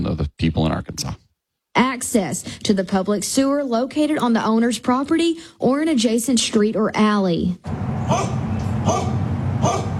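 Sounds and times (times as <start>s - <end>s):
speech: 0.0s - 1.2s, 1.8s - 9.8s
dogs barking: 8.0s - 9.9s.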